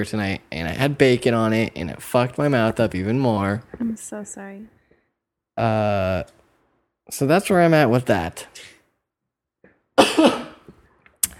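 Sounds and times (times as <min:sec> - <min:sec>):
speech: 0:00.0 - 0:04.8, 0:05.6 - 0:06.4, 0:07.1 - 0:08.7
person coughing harshly: 0:10.0 - 0:10.7.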